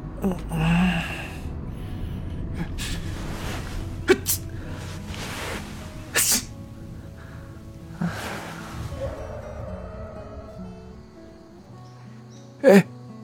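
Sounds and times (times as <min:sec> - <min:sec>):
breathy bursts: 0:00.2 - 0:12.9
drunk passenger sneezing in a car's back seat from cold wind: 0:04.1 - 0:04.5, 0:06.1 - 0:06.5.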